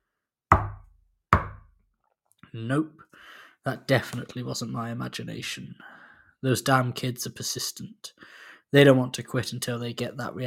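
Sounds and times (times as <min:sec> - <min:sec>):
sharp knocks on a window: 0:00.5 - 0:01.7
speech: 0:02.5 - 0:10.4.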